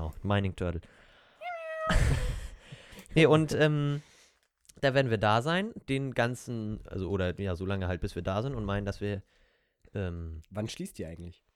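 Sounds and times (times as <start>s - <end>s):
speech: 0.2s - 1.0s, 3.1s - 4.1s, 4.8s - 11.4s
person doing a drawn-out vocal meow imitating a cat: 1.4s - 2.3s
breathy burst like a laugh or exhale: 1.8s - 2.6s.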